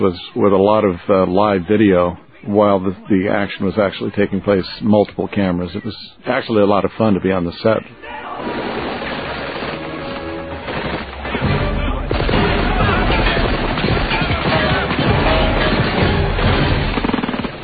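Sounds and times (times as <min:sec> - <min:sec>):
speech: 0:00.0 - 0:08.5
busy noisy action film soundtrack: 0:09.3 - 0:17.6
cinematic explosion with deep booming blast, rumbling and crackling: 0:10.4 - 0:17.6.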